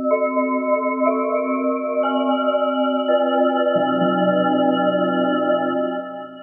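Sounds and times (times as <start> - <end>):
eerie synthesizer sound: 0.1 - 6.4.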